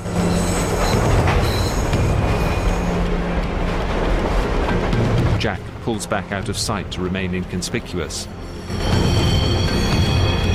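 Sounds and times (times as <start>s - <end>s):
train wheels squealing as it slows: 0.0s - 3.0s, 8.4s - 10.5s
train rumbling pulling into a station platform: 0.0s - 10.5s
speech: 5.4s - 9.1s.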